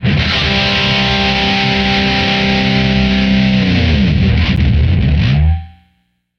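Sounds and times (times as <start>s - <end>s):
guitar: 0.0s - 6.2s.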